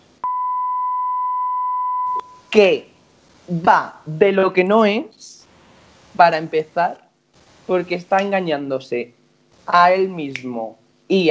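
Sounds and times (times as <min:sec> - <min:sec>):
high-pitched censor bleep: 0:00.2 - 0:02.6
speech: 0:02.5 - 0:02.9, 0:03.5 - 0:05.3, 0:06.2 - 0:07.0, 0:07.7 - 0:11.3.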